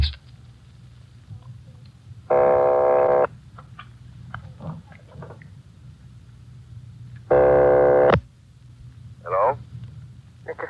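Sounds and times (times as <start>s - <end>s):
telephone ringing tones over the line on a long-distance call: 2.3s - 3.3s, 7.3s - 8.2s.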